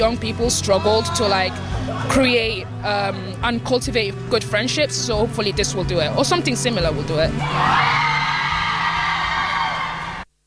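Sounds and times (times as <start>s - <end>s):
speech: 0.0s - 8.1s
crowd of women screaming and whooping: 7.4s - 10.2s.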